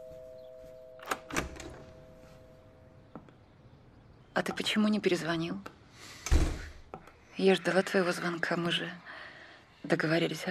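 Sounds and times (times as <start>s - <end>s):
door being opened with clicks and a soft thud: 1.0s - 2.0s, 6.2s - 6.7s
speech: 4.4s - 6.4s, 7.4s - 9.1s, 9.8s - 10.5s.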